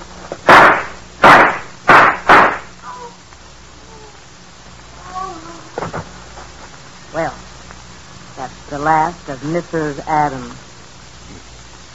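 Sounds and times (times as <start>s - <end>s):
loud sharp gunshots in a radio drama: 0.4s - 2.8s
speech: 7.2s - 7.4s, 8.7s - 10.6s.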